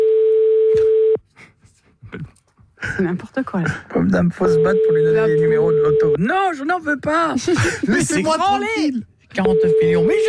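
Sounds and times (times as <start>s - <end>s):
telephone busy tone on a call to a landline: 0.0s - 1.2s, 4.5s - 6.2s, 9.5s - 10.2s
speech: 3.0s - 10.2s.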